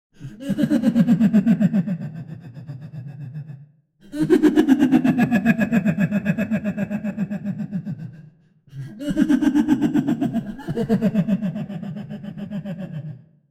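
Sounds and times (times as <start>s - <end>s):
person laughing madly: 0.4s - 8.2s, 8.9s - 13.3s.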